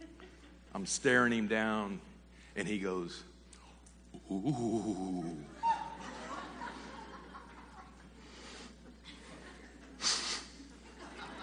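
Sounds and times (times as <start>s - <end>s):
laughter: 0.0s - 0.7s, 4.2s - 11.4s
speech: 0.7s - 3.3s, 4.3s - 5.6s
person deliberately imitating heavy breathing through the nose: 8.2s - 8.8s
sharp loud snort-like exhale: 10.0s - 10.5s.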